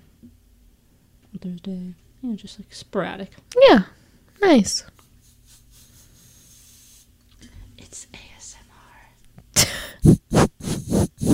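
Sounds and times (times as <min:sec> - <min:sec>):
low steady hum: 0:00.0 - 0:11.3
speech: 0:01.4 - 0:05.0
spray bottle bursts: 0:10.1 - 0:11.3.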